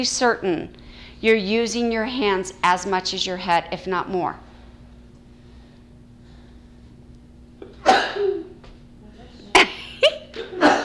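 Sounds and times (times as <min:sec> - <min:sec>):
speech: 0:00.0 - 0:04.4
faint steady hum: 0:00.0 - 0:10.8
sharp explosive sneezes: 0:07.8 - 0:08.4, 0:09.6 - 0:10.8.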